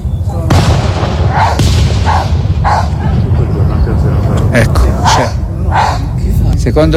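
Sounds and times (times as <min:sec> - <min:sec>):
loud booming fireworks bursts: 0:00.1 - 0:06.6
dog barking in a small field: 0:01.3 - 0:03.2, 0:05.0 - 0:06.1
speech: 0:06.7 - 0:06.9.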